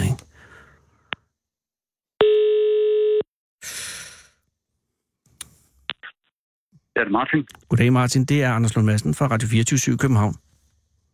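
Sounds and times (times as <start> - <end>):
telephone ringing tone while placing a call: 2.2 - 3.3
speech: 7.0 - 10.5.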